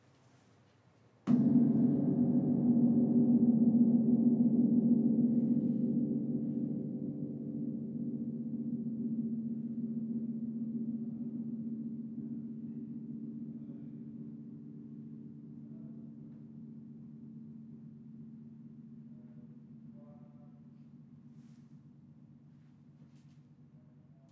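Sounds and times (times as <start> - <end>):
gong vibrating softly: 1.3 - 22.6.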